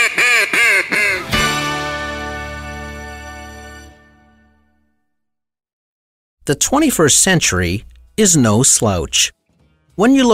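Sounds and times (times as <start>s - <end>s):
duck call quacking: 0.0s - 1.5s
duck call long drawn-out honking note: 0.0s - 2.0s
speech: 6.5s - 9.4s, 10.0s - 10.3s.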